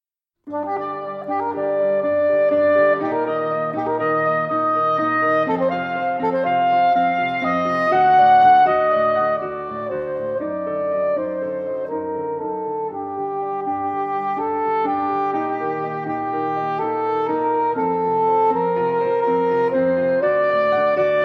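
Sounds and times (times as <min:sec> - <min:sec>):
piano: 0:00.4 - 0:21.2
saxophone: 0:00.5 - 0:21.2.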